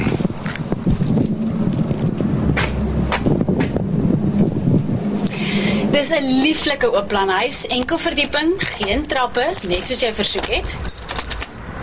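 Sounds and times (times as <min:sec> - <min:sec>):
steady gusty wind rumbling across the microphone outdoors: 0:00.0 - 0:07.0
metallic clinks: 0:00.4 - 0:02.2, 0:07.3 - 0:11.6
speech: 0:06.0 - 0:11.0.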